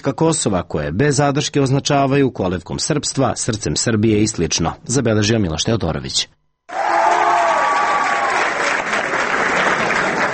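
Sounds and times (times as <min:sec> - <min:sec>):
speech: 0:00.0 - 0:06.9
audience applause greeting an ambassador: 0:06.7 - 0:10.3.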